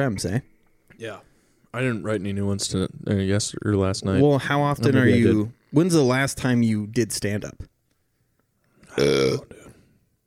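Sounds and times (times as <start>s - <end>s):
speech: 0.0s - 7.7s, 9.0s - 9.6s
loud burp: 8.9s - 9.8s.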